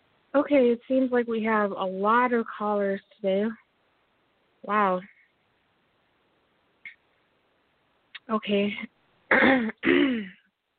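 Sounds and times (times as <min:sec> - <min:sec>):
speech: 0:00.4 - 0:03.6, 0:04.6 - 0:05.1, 0:08.3 - 0:10.4
person clearing throat: 0:09.3 - 0:10.4.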